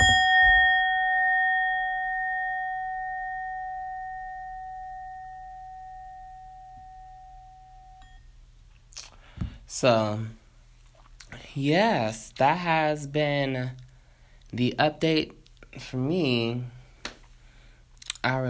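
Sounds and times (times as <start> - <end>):
single bell ringing: 0.0 - 8.3
speech: 9.7 - 10.4, 11.6 - 13.8, 14.5 - 16.8, 18.2 - 18.4.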